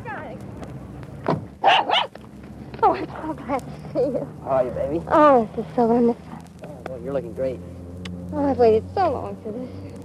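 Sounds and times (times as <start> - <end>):
dog barking and yipping excitedly: 1.6 - 2.2
speech: 3.0 - 6.3, 7.0 - 7.7, 8.3 - 9.9.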